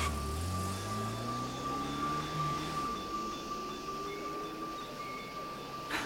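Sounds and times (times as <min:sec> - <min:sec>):
taxi engine revving and accelerating: 0:00.0 - 0:06.0
thin steady whine: 0:00.0 - 0:06.0
traffic rumble: 0:00.0 - 0:06.0.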